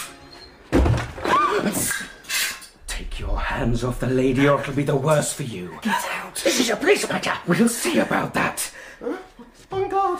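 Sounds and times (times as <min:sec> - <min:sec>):
door slamming open: 0:00.7 - 0:01.8
speech: 0:01.6 - 0:02.2, 0:03.6 - 0:10.1.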